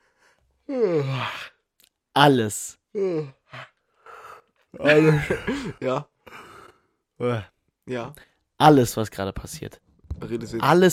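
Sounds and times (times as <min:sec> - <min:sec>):
speech: 0:00.7 - 0:01.5, 0:02.2 - 0:03.7, 0:04.7 - 0:06.4, 0:07.2 - 0:10.9
person yawning: 0:00.7 - 0:01.6.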